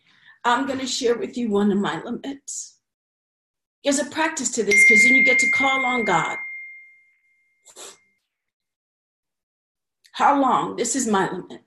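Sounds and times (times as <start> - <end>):
speech: 0.4 - 2.8, 3.8 - 6.5, 10.2 - 11.6
phone notification ding: 4.7 - 7.1.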